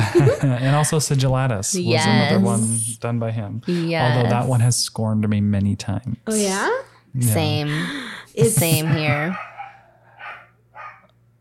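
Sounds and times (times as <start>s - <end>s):
laughter: 0.0s - 1.2s, 8.4s - 9.4s
low steady electrical hum: 0.0s - 11.3s
speech: 0.1s - 9.5s
short dog barks: 8.8s - 11.1s.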